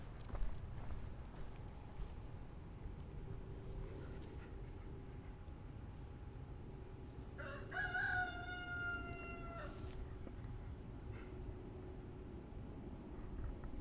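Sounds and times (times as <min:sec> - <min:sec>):
steady outdoor rumble: 0:00.0 - 0:13.8
rooster crowing: 0:07.3 - 0:10.0.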